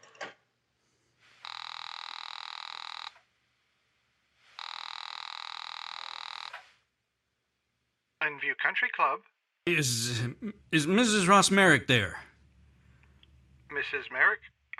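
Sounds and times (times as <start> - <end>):
telephone being dialed with clattering whirring bursts: 1.4 - 3.1, 4.6 - 6.6
speech: 8.2 - 12.2, 13.9 - 14.5.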